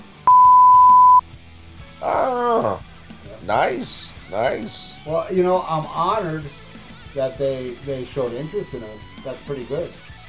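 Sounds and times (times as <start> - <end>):
electronic censor beep: 0.3 - 1.2
speech: 3.5 - 10.1.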